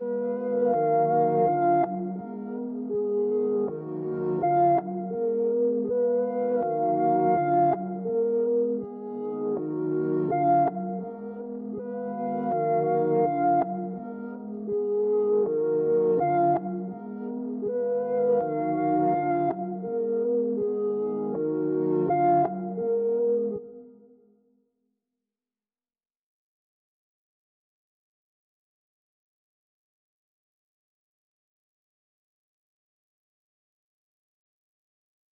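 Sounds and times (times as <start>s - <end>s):
reversed keys melody loop in D sharp minor at 163 BPM: 0.1s - 23.6s.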